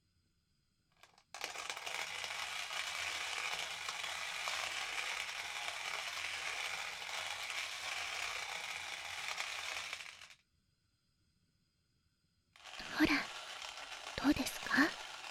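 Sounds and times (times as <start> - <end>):
hand-cranked coffee mill grinding coffee beans: 1.0 - 10.4, 12.6 - 15.2.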